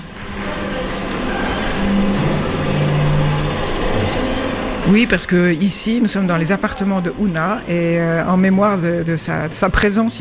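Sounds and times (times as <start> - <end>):
old film projector whirring and rattling with reel turning: 0.0 - 10.1
speech: 4.9 - 10.1.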